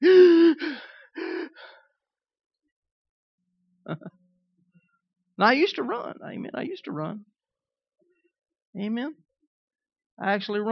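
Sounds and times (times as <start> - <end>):
person gasping for breath: 0.0 - 1.8
speech: 3.9 - 4.2, 5.4 - 7.3, 8.8 - 9.2, 10.2 - 10.7.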